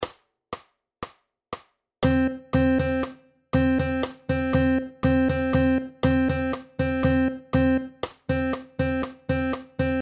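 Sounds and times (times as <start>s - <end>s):
melodic rhythm example: 2.0s - 10.0s.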